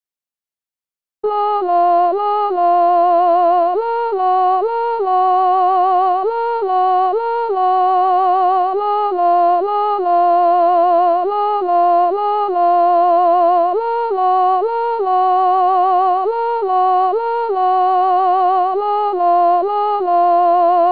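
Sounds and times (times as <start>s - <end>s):
sopranos singing: 1.3s - 20.9s.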